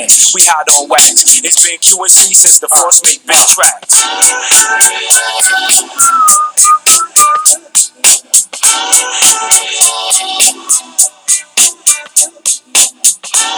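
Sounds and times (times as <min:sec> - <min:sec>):
speech: 0:00.0 - 0:06.5
fast steady beat of crisp percussive hits: 0:00.0 - 0:13.5
bright whistled melody in a song: 0:04.2 - 0:08.2.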